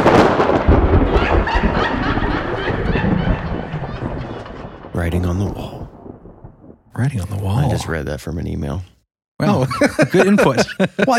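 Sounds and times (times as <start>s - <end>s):
lightning-strike thunderclap rumbling: 0.0s - 7.8s
laughter: 1.1s - 4.5s, 9.4s - 11.1s
speech: 7.0s - 11.1s.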